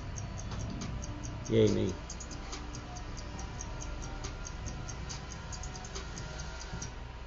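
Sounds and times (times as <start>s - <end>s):
stopwatch ticking: 0.0s - 7.0s
dense murky music bed: 0.0s - 7.1s
speech: 1.5s - 2.2s.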